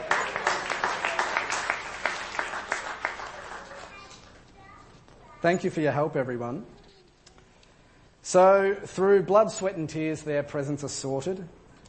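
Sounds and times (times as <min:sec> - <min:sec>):
small group clapping: 0:00.0 - 0:04.4
speech: 0:05.4 - 0:06.8, 0:08.3 - 0:11.8.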